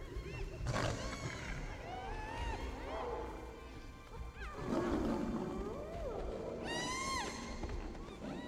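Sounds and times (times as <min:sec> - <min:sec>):
hyenas whooping and yelping while fighting: 0:00.0 - 0:08.4
lion roaring and snarling while fighting hyenas: 0:00.6 - 0:03.5, 0:04.5 - 0:06.6.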